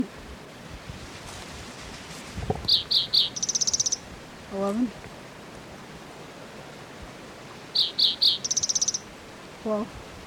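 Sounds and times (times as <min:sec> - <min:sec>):
bird chirps: 0:02.7 - 0:04.0, 0:07.8 - 0:09.0
speech: 0:04.5 - 0:05.1, 0:09.6 - 0:10.0.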